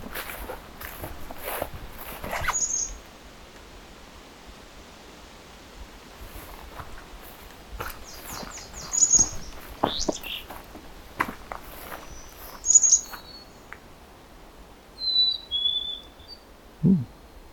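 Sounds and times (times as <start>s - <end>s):
footstep-like sounds: 0.0s - 2.6s, 6.2s - 13.3s
soft rustling: 0.0s - 2.7s, 6.2s - 13.3s
black-capped chickadee singing: 2.4s - 3.0s, 12.6s - 13.4s, 15.0s - 17.1s.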